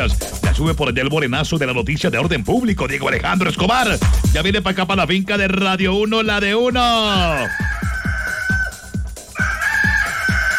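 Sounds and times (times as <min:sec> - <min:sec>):
speech: 0:00.0 - 0:07.7
steady thumping bass beat: 0:00.0 - 0:10.5
rooster crowing: 0:07.3 - 0:10.5.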